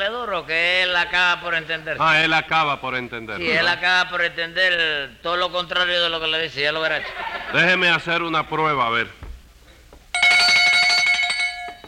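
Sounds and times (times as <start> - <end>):
speech: 0.0 - 9.2
laughter: 6.8 - 8.2
small hand bell ringing: 10.2 - 11.8.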